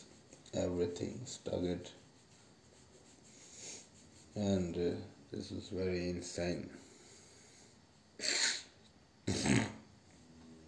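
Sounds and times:
speech: 0.5 - 2.0, 4.4 - 6.9
cough from someone with a cold: 8.2 - 8.7, 9.3 - 9.8
sneeze from someone with a cold: 8.2 - 9.8.

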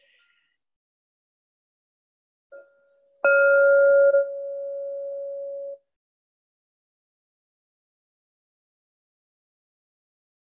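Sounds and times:
meditation bell struck and ringing: 2.6 - 5.8
faint brief chime: 2.6 - 5.9.

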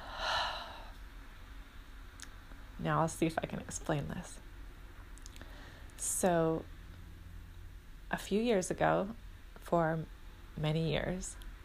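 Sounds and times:
deep inhale: 0.0 - 1.0, 5.4 - 6.0
speech: 2.8 - 4.5, 6.1 - 6.8, 8.1 - 11.4.

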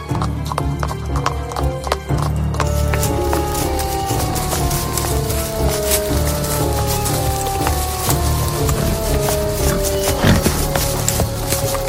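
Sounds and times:
horse hooves galloping: 0.0 - 11.8
horse whinnying: 7.0 - 11.6.

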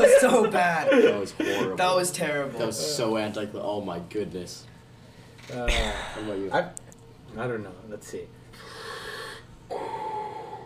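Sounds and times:
speech: 0.2 - 4.7, 5.5 - 8.7, 9.7 - 10.1
voice imitating heavy hissing mask breathing: 8.5 - 10.6.

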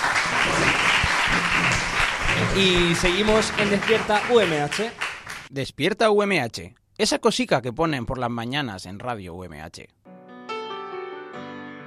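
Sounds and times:
crowd applauding: 0.0 - 5.5
speech: 2.6 - 10.1.

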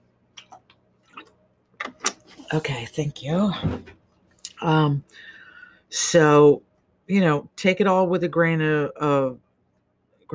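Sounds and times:
person sipping and swallowing water from a glass: 0.3 - 1.4
speech: 2.5 - 4.0, 4.6 - 9.4.

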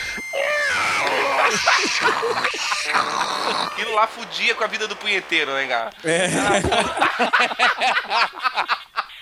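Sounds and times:
voice imitating a dial-up internet modem connecting: 0.4 - 6.9
laughter: 0.5 - 9.2
speech: 1.5 - 8.8.

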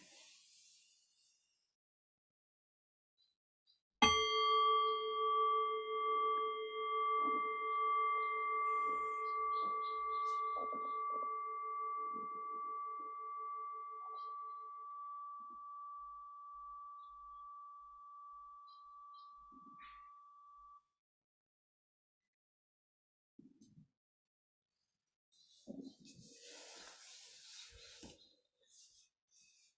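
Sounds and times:
meditation bell struck and ringing: 4.0 - 20.8.

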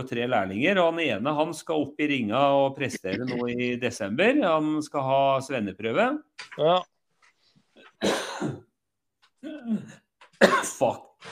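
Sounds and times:
speech: 0.0 - 6.9, 8.0 - 8.7, 9.4 - 11.2
person coughing and sputtering after swallowing coffee the wrong way: 3.0 - 3.5, 8.0 - 8.7, 9.4 - 10.9.

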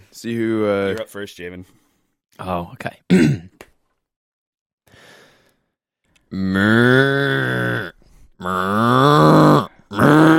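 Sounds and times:
speech: 0.2 - 1.8, 2.4 - 3.6, 6.3 - 10.0
person imitating an angry cow mooing: 6.3 - 10.3.

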